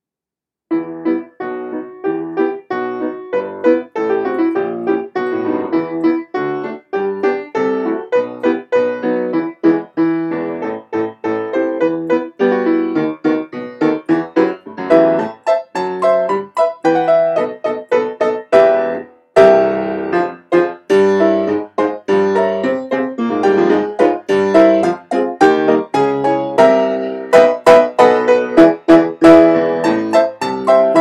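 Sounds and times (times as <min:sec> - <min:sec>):
piano improvisation in E minor: 0:00.7 - 0:30.9.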